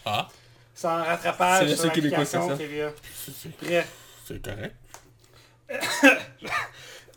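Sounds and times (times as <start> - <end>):
speech: 0.0 - 4.9, 5.7 - 6.8
person coughing harshly while choking slightly: 5.7 - 7.0.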